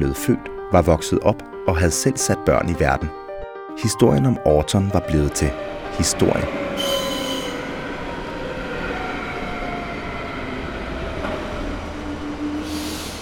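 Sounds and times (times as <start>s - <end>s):
speech: 0.0s - 3.2s, 3.8s - 7.0s
train arriving at Borup station on a cold windy day: 4.7s - 13.2s
train wheels and brakes squealing: 5.6s - 13.2s.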